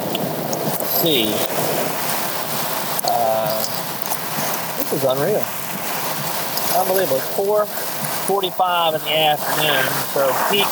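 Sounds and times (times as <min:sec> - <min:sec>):
heavy rain and hail pounding a vehicle: 0:00.0 - 0:10.7
speech: 0:01.0 - 0:01.7, 0:04.9 - 0:05.6, 0:06.8 - 0:10.7.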